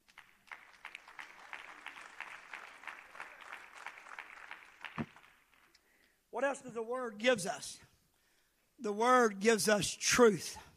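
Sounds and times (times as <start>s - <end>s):
audience clapping: 0.0s - 6.0s
speech: 6.4s - 7.9s, 8.8s - 10.7s.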